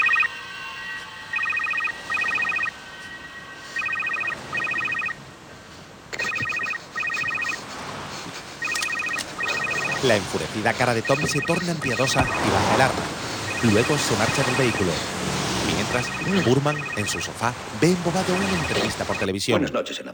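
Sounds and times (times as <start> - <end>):
phone ringing in warbling double bursts: 0.0 - 5.3, 6.1 - 8.0, 8.6 - 19.3
speech: 10.0 - 20.1.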